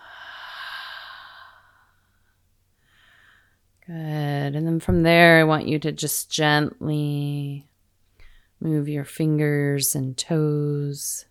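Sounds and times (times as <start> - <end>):
slow exhaled breath during a guided breathing exercise: 0.0 - 3.6
speech: 3.9 - 7.7, 8.6 - 11.2.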